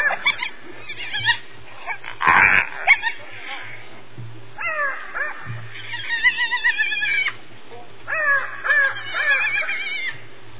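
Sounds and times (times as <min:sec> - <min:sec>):
spotted hyena Crocuta crocuta uttering warbling squeals: 0:00.0 - 0:04.0, 0:04.6 - 0:07.4, 0:08.1 - 0:10.2.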